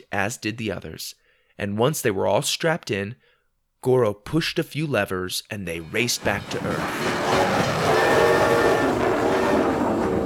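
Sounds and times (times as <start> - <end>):
speech: 0.1 - 8.0
train rushing along with roar and rattle: 5.8 - 10.2
sustained train horn tone: 7.3 - 10.2.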